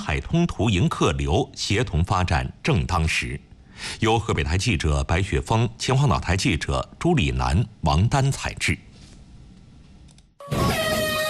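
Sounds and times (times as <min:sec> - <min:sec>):
speech: 0:00.0 - 0:08.9
ship horn sounding to start a sailing regatta on the coast: 0:10.4 - 0:11.2.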